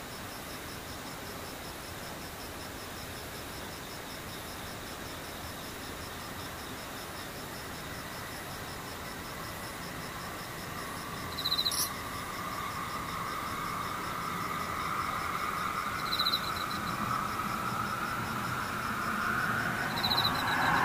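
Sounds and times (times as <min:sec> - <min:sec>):
insects trilling with high pulsing buzz: 0:00.0 - 0:20.8
sharp chirps: 0:11.3 - 0:11.9, 0:19.9 - 0:20.8
vehicle approaching with rushing hum: 0:11.7 - 0:20.8.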